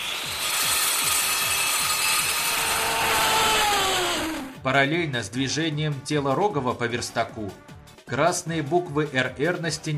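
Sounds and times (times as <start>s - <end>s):
saws cutting into a body on a workbench: 0.0s - 4.6s
speech: 4.6s - 9.9s.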